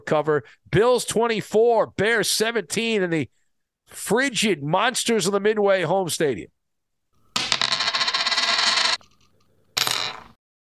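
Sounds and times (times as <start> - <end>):
speech: 0.1 - 6.6
penny landing with a crisp clatter: 7.4 - 10.4.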